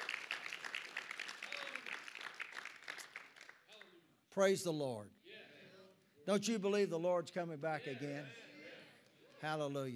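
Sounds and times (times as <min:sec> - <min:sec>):
audience applauding in a praise clap: 0:00.0 - 0:03.8
speech: 0:04.4 - 0:05.2, 0:06.3 - 0:08.4, 0:09.4 - 0:09.9.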